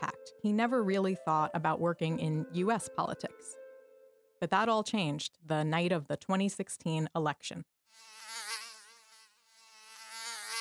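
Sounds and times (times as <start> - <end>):
speech: 0.3 - 3.6, 4.4 - 8.1
high whining insect buzz: 7.9 - 10.5.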